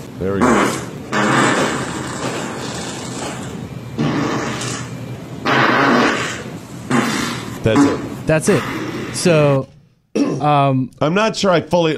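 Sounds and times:
speech: 0.2 - 0.8, 7.7 - 9.7, 10.4 - 11.9
loud raspy sputtering farts in a played video clip: 0.3 - 8.0.

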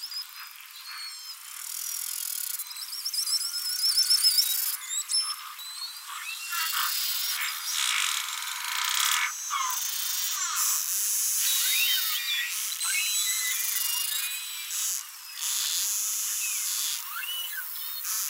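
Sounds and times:
large mixed herd of beluga whales whistling and chirping: 0.0 - 1.5, 2.6 - 7.6, 11.5 - 14.7, 16.4 - 17.7
beluga whale buzzy pulses: 0.3 - 18.2.

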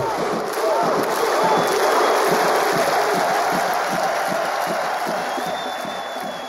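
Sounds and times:
large crowd of football fans clapping in a steady rhythm: 0.0 - 6.4
loud cheering of football fans: 0.0 - 6.4.

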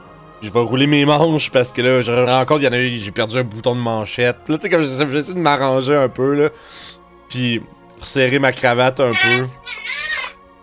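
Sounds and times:
speech: 0.4 - 10.2
laughter: 9.1 - 10.3
cat meowing under a chair: 9.1 - 10.4.

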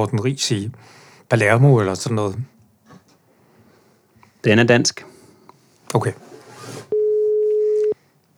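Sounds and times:
speech: 0.0 - 2.6, 4.4 - 5.1, 5.9 - 6.2
telephone ringback tone while calling: 6.9 - 8.0.

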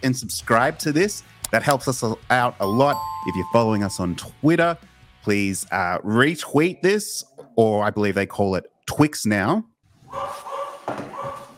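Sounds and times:
speech: 0.0 - 11.0
dog barking at delivery driver: 10.1 - 11.5.

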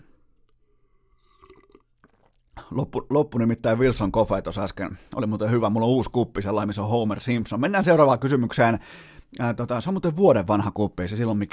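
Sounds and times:
person sipping and swallowing water: 0.4 - 2.7
speech: 2.7 - 11.5.

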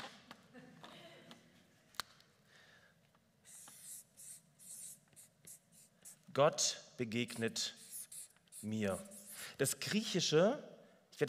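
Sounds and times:
pen scratching and scrawling across a surface: 3.5 - 6.2, 7.3 - 9.6
squeaky rhythmic pen drawing strokes: 3.5 - 6.2, 7.2 - 9.6
speech: 6.4 - 7.8, 8.6 - 11.2.

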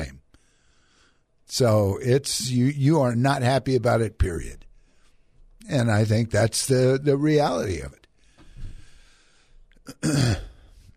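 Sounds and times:
speech: 1.5 - 4.7, 5.6 - 8.0, 9.9 - 10.5
loud cough into microphone: 9.9 - 10.8.

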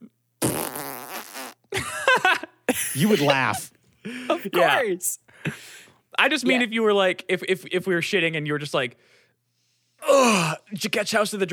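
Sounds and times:
loud buzzy fart: 0.4 - 1.7
speech: 2.7 - 3.7, 4.4 - 5.6, 6.2 - 9.2, 10.1 - 11.5.

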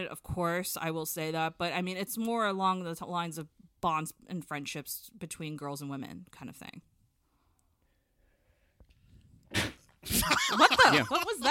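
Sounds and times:
speech: 0.0 - 6.9, 10.1 - 11.4
person sneezing: 9.5 - 10.3
laughter: 10.1 - 11.4.

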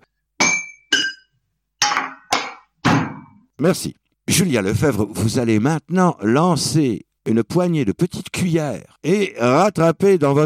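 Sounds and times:
knocking on kitchen counter, sink and pans: 0.4 - 3.4
speech: 3.6 - 10.4.

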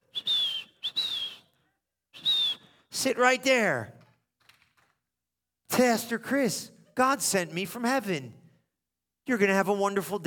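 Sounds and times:
person whistling imitation bird calls: 0.1 - 1.5, 2.2 - 2.9
speech: 3.0 - 4.0, 5.8 - 8.4, 9.3 - 10.2.

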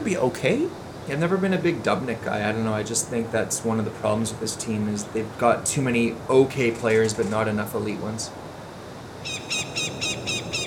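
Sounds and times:
speech: 0.1 - 8.6
bird calling, possibly a hawk or crow: 9.2 - 10.6.

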